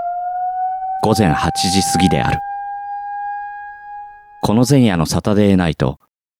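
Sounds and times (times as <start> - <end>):
civil defense siren wailing: 0.0 - 5.0
speech: 1.0 - 2.5, 4.5 - 6.0.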